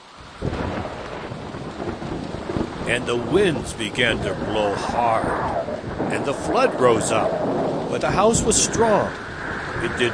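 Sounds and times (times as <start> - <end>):
heavy rain in a thunderstorm: 0.0 - 10.1
deep roll of thunder: 0.2 - 10.1
speech: 2.9 - 10.1.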